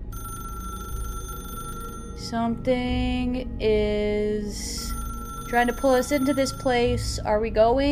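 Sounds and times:
telephone bell ringing: 0:00.0 - 0:02.3, 0:04.8 - 0:07.0
speech: 0:02.2 - 0:07.9.

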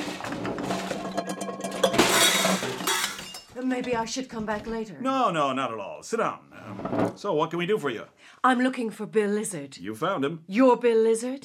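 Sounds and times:
broken glass shards clinking and scraping on the floor as they are shifted: 0:00.4 - 0:03.6
speech: 0:03.7 - 0:11.4.

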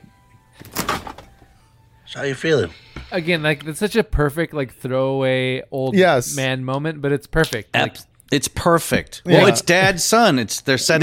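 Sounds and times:
freezer door being pushed shut: 0:00.6 - 0:01.3
speech: 0:02.1 - 0:11.0.

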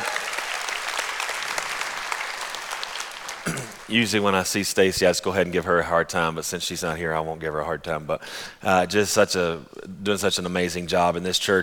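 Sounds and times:
large audience applauding: 0:00.0 - 0:03.9
speech: 0:03.9 - 0:11.6.

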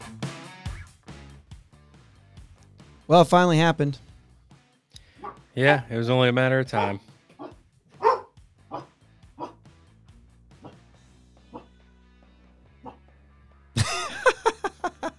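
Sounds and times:
speech: 0:03.1 - 0:04.0, 0:05.6 - 0:07.1
dogs barking: 0:05.1 - 0:05.5, 0:06.7 - 0:09.6, 0:10.6 - 0:10.9, 0:11.5 - 0:11.8, 0:12.8 - 0:13.1
laughter: 0:13.8 - 0:15.1.

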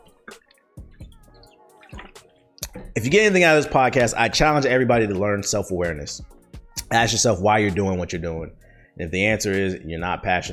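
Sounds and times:
person gulping water: 0:00.0 - 0:03.0
water sloshing: 0:00.0 - 0:04.2
speech: 0:03.0 - 0:10.5.

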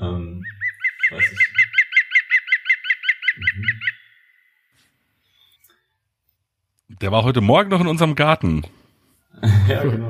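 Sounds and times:
green woodpecker laughing call: 0:00.4 - 0:04.5
speech: 0:07.0 - 0:08.8, 0:09.4 - 0:10.0.

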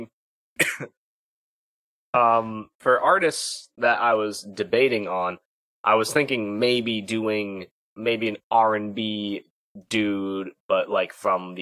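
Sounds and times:
speech: 0:00.0 - 0:01.0, 0:02.1 - 0:11.6
person coughing: 0:00.6 - 0:01.0.

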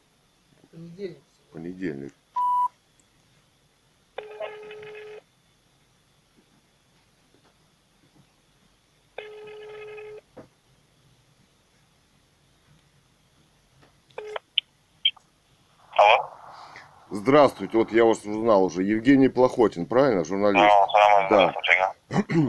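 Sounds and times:
speech: 0:00.8 - 0:02.2, 0:17.3 - 0:22.4
telephone line ringback tones: 0:04.2 - 0:05.2, 0:09.2 - 0:10.2
brief burst of noise: 0:15.7 - 0:19.3.

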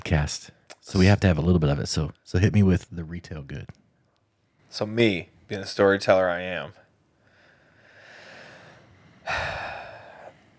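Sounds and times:
speech: 0:00.1 - 0:03.8, 0:04.7 - 0:06.8, 0:09.3 - 0:09.6
deep human breath: 0:07.2 - 0:10.5.

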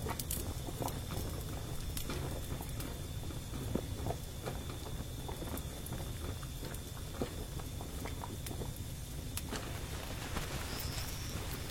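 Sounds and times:
firewood burning: 0:00.0 - 0:11.6
faint thin whine: 0:01.6 - 0:11.6
high whistle: 0:10.4 - 0:11.6.

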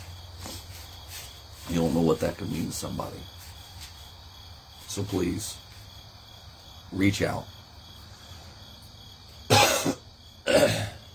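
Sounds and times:
speech: 0:01.7 - 0:03.4, 0:05.0 - 0:05.7, 0:06.9 - 0:07.6
person coughing and clearing throat: 0:09.5 - 0:11.1.

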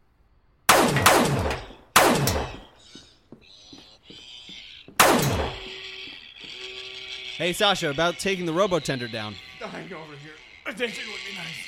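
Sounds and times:
gunshots fired at a mechanical robot bartender: 0:00.7 - 0:02.7, 0:05.0 - 0:05.7
speech: 0:07.4 - 0:11.6.

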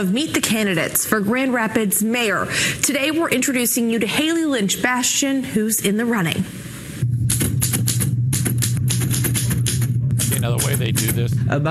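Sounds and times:
speech: 0:00.0 - 0:06.7, 0:10.5 - 0:11.7
constant low hum: 0:06.9 - 0:11.7
old typewriter being typed on: 0:07.3 - 0:11.3.

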